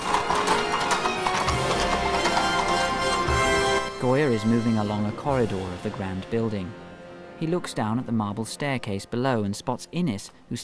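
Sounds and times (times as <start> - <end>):
horse hooves clip-clopping on a hard surface in a courtyard: 0.0 - 4.0
carriage wheels rumbling: 0.0 - 6.5
speech: 4.3 - 6.8, 7.4 - 10.6.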